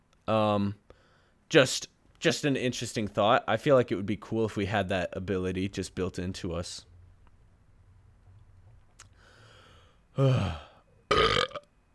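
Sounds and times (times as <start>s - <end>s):
speech: 0.3s - 0.8s, 1.5s - 6.9s, 10.2s - 11.3s
person burping into a microphone: 10.2s - 11.7s.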